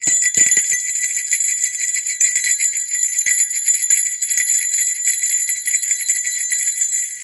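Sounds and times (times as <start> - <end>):
bear bell ringing: 0.0 - 7.2.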